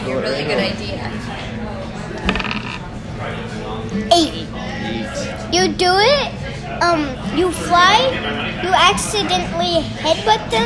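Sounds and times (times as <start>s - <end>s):
low murmur of voices: 0.0s - 10.6s
dice clattering across a hard surface: 2.2s - 2.9s
speech: 3.9s - 10.6s.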